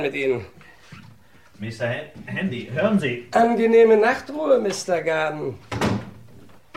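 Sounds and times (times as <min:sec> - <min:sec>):
speech: 0:00.0 - 0:00.6, 0:01.6 - 0:05.8
wooden wardrobe door thudding shut on a man: 0:05.7 - 0:06.2.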